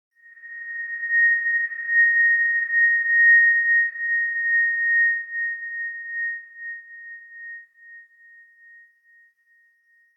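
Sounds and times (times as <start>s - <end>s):
sonar beacon: 0.2s - 8.1s.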